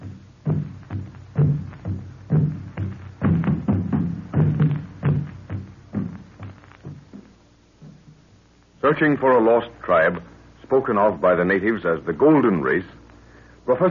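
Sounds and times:
hollow skin-covered log drums booming in the tropical night: 0.0s - 8.3s
speech: 8.9s - 13.0s, 13.6s - 13.8s.

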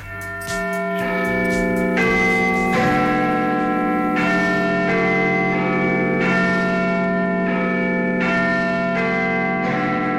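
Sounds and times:
massive church tower bell tolling: 0.0s - 10.1s.

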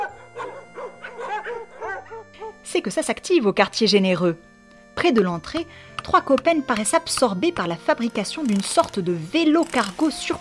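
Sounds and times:
dogs barking and howling at arriving visitors: 0.0s - 2.6s
speech: 2.7s - 10.3s.

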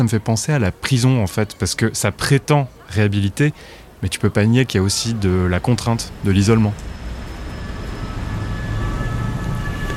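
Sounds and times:
speech: 0.0s - 7.0s
metro train rumbling at Ourcq metro station in Paris: 4.7s - 9.9s
faint high tonal whines of a metro train: 5.0s - 9.9s.

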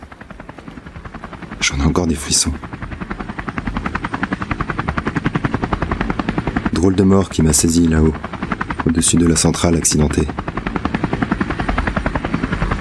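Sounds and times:
helicopter rotor blades thumping: 0.0s - 12.7s
speech: 1.7s - 2.9s, 6.8s - 10.5s.

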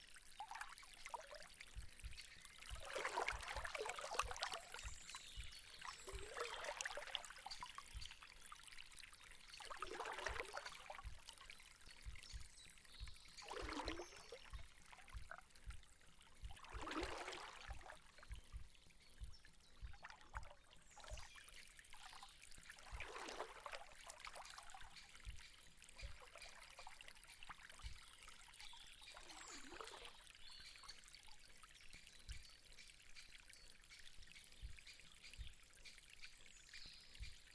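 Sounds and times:
gentle river water lapping and trickling: 0.0s - 27.9s, 28.9s - 30.4s.

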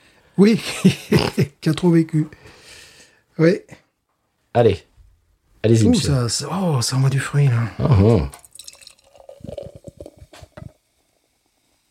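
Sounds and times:
speech: 0.4s - 2.6s, 3.4s - 3.8s, 4.5s - 4.9s, 5.6s - 8.4s
laughter: 0.6s - 1.6s
fizzy drink poured into a glass: 8.3s - 10.8s.

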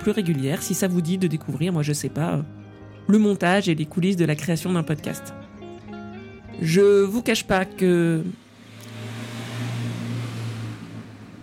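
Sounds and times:
speech: 0.0s - 5.4s, 6.6s - 8.4s
car passing by outside with engine rumble and road noise: 8.4s - 11.4s.

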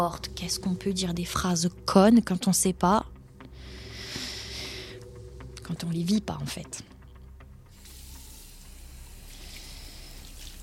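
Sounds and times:
speech: 0.0s - 3.2s, 5.7s - 6.9s
shower water running: 7.7s - 10.6s.

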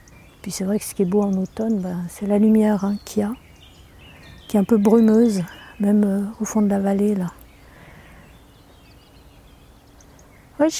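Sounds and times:
birds chirping outdoors among trees in autumn: 0.0s - 10.7s
speech: 0.4s - 3.4s, 4.5s - 7.4s, 10.6s - 10.7s.

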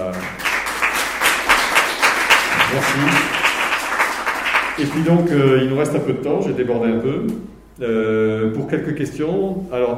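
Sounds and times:
audience applause for two presenters: 0.0s - 5.6s
speech: 2.7s - 3.4s, 4.8s - 9.9s.

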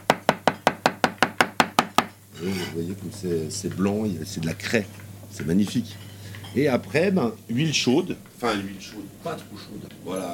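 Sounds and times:
knife cutting porcini mushroom into large pieces: 0.0s - 2.1s
speech: 2.4s - 10.3s.

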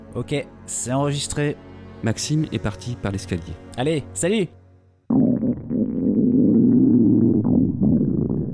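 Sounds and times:
speech: 0.2s - 5.2s
low hum: 5.1s - 8.5s
stomach growling from hunger: 5.1s - 8.5s.

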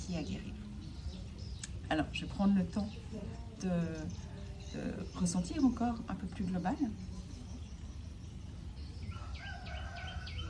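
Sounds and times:
birds chirping outdoors: 0.0s - 10.4s
speech: 0.1s - 0.7s, 1.9s - 7.2s.

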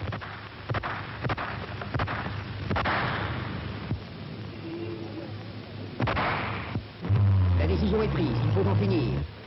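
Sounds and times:
gunshots: 0.0s - 3.6s, 6.0s - 7.3s
noisy rumble of commotion: 1.6s - 9.4s.

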